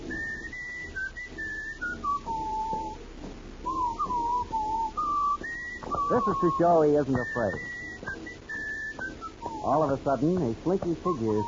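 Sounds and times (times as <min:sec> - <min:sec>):
faint low hum: 0:00.0 - 0:11.4
man whistling a tune by the waterfront: 0:00.1 - 0:03.0, 0:03.6 - 0:11.4
speech: 0:06.1 - 0:07.8, 0:09.6 - 0:11.4.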